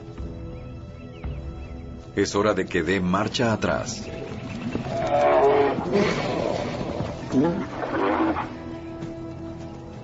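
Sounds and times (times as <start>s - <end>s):
speech: 2.2s - 6.3s, 7.3s - 7.8s
grizzly bears roaring and growling, a young male and a mother bear: 4.1s - 8.8s.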